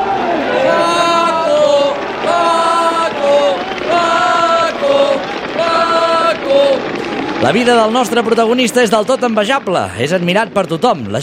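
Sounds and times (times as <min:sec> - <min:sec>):
large crowd in the stands of a bullring chanting a name: 0:00.0 - 0:08.8
speech: 0:07.4 - 0:11.2.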